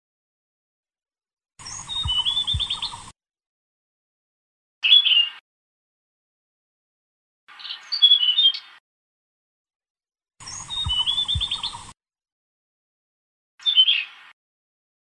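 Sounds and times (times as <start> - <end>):
blue-throated flycatcher song: 1.6 - 3.2, 4.8 - 5.4, 10.4 - 12.0, 13.6 - 14.4.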